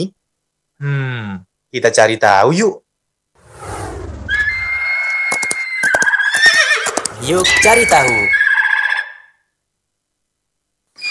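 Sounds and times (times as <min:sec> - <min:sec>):
speech: 0:00.8 - 0:02.8, 0:07.2 - 0:08.4
donkey braying: 0:04.4 - 0:09.3.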